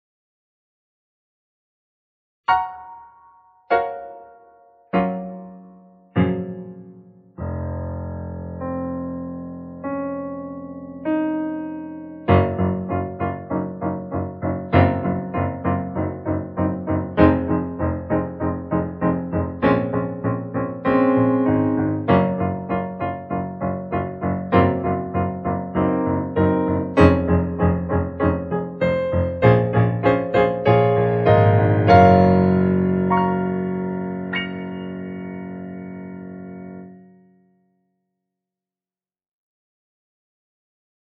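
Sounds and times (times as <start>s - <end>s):
low dark piano with reverb: 2.5s - 37.6s.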